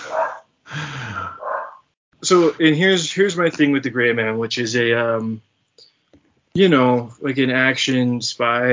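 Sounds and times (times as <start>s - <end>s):
dogs barking with rough growly barks: 0.0s - 0.5s, 1.3s - 1.9s
speech: 2.3s - 5.5s, 6.6s - 8.7s.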